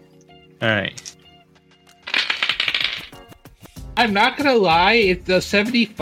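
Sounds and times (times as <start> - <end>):
speech: 0.6 - 1.2, 4.0 - 6.0
tabletop game dice tumbling across a hard surface: 2.0 - 3.3.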